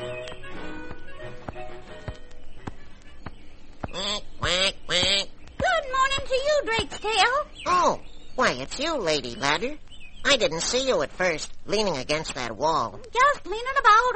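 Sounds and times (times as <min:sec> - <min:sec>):
quiet tapping: 0:00.2 - 0:07.2
person imitating duck quacks: 0:03.9 - 0:05.3
speech: 0:08.6 - 0:14.1.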